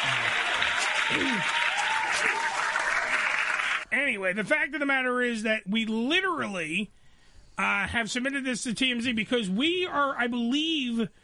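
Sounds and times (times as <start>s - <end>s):
audience applause: 0.0s - 3.8s
speech: 1.1s - 1.6s, 4.2s - 7.0s, 7.6s - 11.2s.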